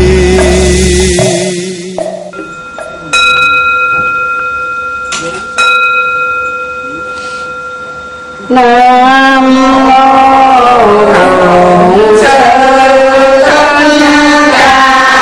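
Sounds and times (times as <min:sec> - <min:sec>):
person chanting: 0:00.0 - 0:03.2, 0:08.4 - 0:15.1
temple bell struck and ringing: 0:00.0 - 0:11.8
speech: 0:08.5 - 0:09.1.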